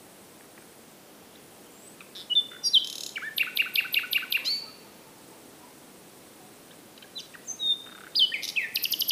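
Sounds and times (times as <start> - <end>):
common nightingale Luscinia megarhynchos singing: 1.7 - 4.9, 7.0 - 9.0.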